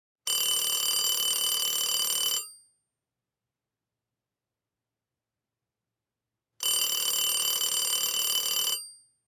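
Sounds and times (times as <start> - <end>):
old phone ringing: 0.3 - 2.5, 6.6 - 9.0.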